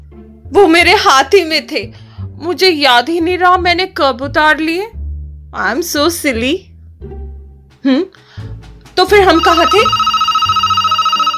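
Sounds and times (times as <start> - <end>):
speech: 0.5 - 6.7, 7.8 - 8.2, 9.0 - 10.1
telephone ringing with trilling electronic tone: 9.1 - 11.3.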